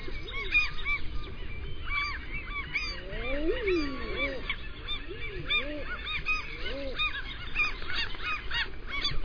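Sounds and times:
high chattering calls: 0.0 - 9.2
Common eider cooing calls: 1.9 - 9.2.

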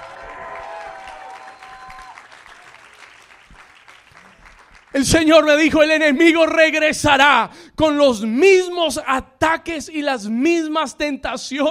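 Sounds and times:
whoops and shouted cheers of victory: 0.0 - 3.0
crowd clapping loudly and continuously: 0.0 - 5.8
speech: 4.9 - 11.7.

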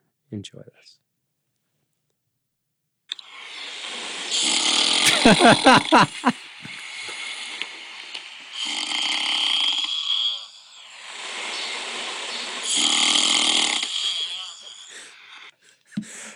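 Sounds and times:
speech: 0.3 - 1.1, 5.3 - 6.7
person snoring loudly with rasping wheezing inhales: 3.1 - 15.6
laughter: 5.0 - 7.2.

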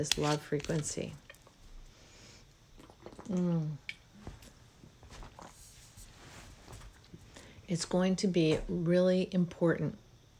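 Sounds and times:
speech: 0.0 - 1.2, 3.3 - 3.9, 7.7 - 10.0
throaty gulp of water: 2.8 - 3.9
person sipping water with wet mouth noises: 2.8 - 4.0
soft breathing: 5.6 - 7.7.

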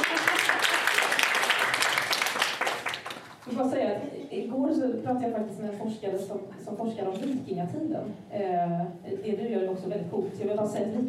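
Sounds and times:
crowd applause: 0.0 - 3.4
speech: 4.6 - 11.0.

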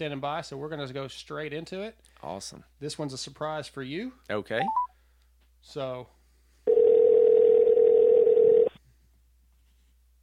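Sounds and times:
speech: 0.0 - 4.8, 5.6 - 6.2
steady telephone tone as a call is placed on air: 6.7 - 8.8.

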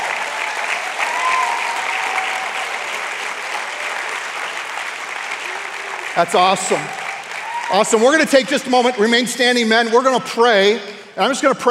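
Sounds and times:
large indoor crowd applauding: 0.0 - 9.0
speech: 6.2 - 7.0, 7.7 - 11.6.

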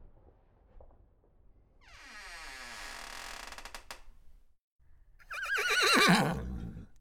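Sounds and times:
horse neighing: 5.2 - 6.9.

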